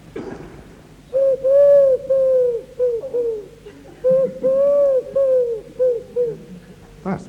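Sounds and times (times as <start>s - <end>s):
person imitating wood pigeon cooing: 1.1s - 6.9s.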